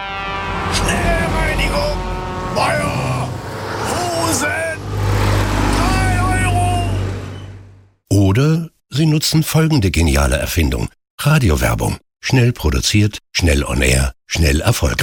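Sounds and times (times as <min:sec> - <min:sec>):
heavy trucks driving past: 0:00.0 - 0:08.0
men shouting: 0:00.6 - 0:04.8, 0:05.6 - 0:07.0
speech: 0:02.6 - 0:03.2, 0:04.3 - 0:04.7, 0:08.4 - 0:15.0.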